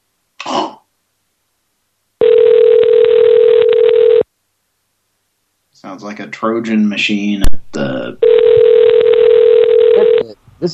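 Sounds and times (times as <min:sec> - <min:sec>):
person clearing throat: 0:00.4 - 0:00.9
crackly telephone ringing: 0:02.2 - 0:04.2, 0:08.2 - 0:10.3
speech: 0:06.0 - 0:08.4.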